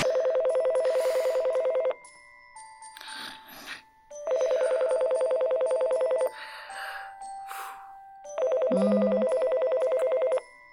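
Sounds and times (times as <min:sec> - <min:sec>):
telephone ringing with bright electronic warble: 0:00.0 - 0:02.0, 0:04.2 - 0:06.4, 0:08.3 - 0:10.5.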